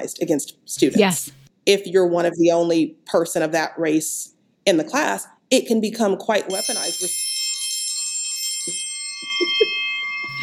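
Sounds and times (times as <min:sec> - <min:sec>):
speech: 0:00.0 - 0:07.2, 0:09.2 - 0:09.7
bell ringing with bright metallic overtones: 0:06.5 - 0:10.4.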